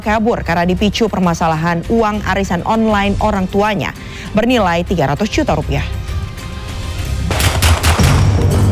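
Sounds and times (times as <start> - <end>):
speech: 0.0 - 6.1
police warning gunshots fired into the air: 7.3 - 8.6.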